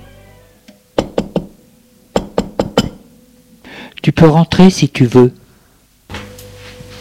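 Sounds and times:
knocking on a bedroom door: 1.0 - 1.5
speech: 4.1 - 5.4.

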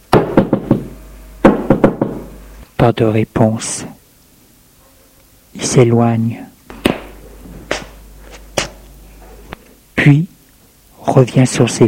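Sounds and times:
firm knocking on a door: 0.1 - 2.3
speech: 2.8 - 4.0, 5.6 - 6.5, 10.0 - 10.3, 11.1 - 11.8.

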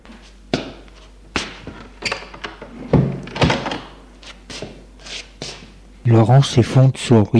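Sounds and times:
door pushed shut with a solid thud: 2.9 - 3.9
speech: 6.1 - 7.3.

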